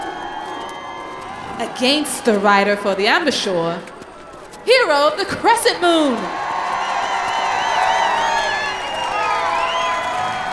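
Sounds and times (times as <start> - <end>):
crowd whoops and shouts at a mounted riding competition: 0.0 - 3.0, 6.0 - 10.5
large crowd roaring and cheering at a mounted riding competition final in fields: 0.0 - 10.5
speech: 1.6 - 3.9, 4.7 - 6.4.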